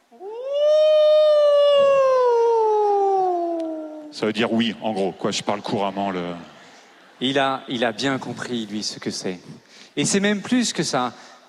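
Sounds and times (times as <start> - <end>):
wolf howling: 0.1 - 4.2
speech: 4.2 - 6.6, 7.2 - 11.4.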